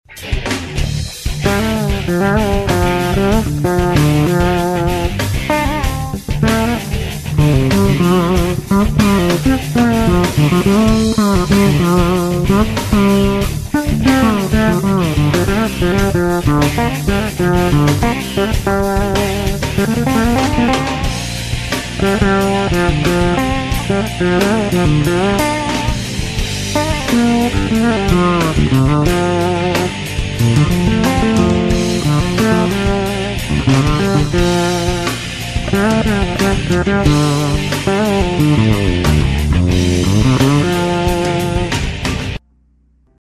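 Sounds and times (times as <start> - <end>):
solo bass jam: 0.2 - 43.1.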